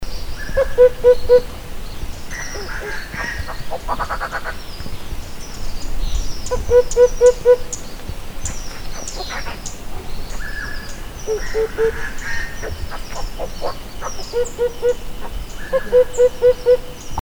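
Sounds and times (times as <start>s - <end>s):
Himalayan cuckoo: 0.4s - 1.6s, 6.5s - 7.8s, 9.0s - 17.1s.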